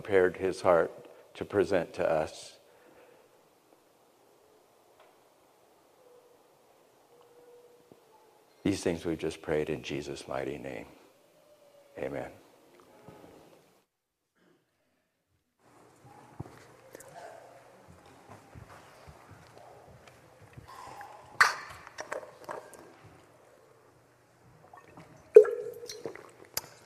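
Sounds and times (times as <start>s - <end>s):
speech: 0.0s - 2.6s, 8.7s - 11.0s, 12.0s - 12.4s
person drinking water: 20.6s - 23.0s, 24.6s - 26.8s.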